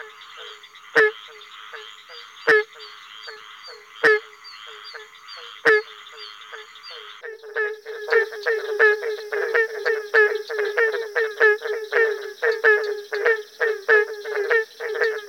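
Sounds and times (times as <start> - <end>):
barking tree frog hollow nasal barking calls: 0.0 - 15.2.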